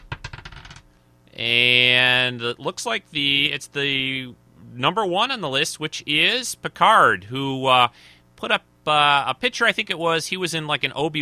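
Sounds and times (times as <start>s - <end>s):
small die clattering across a hard tabletop: 0.0s - 0.8s
speech: 1.4s - 11.1s.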